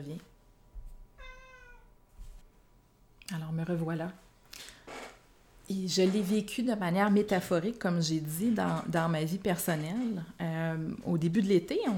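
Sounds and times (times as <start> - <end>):
speech: 0.0 - 0.3, 3.3 - 4.3, 5.7 - 11.9
cat meowing: 1.2 - 2.0.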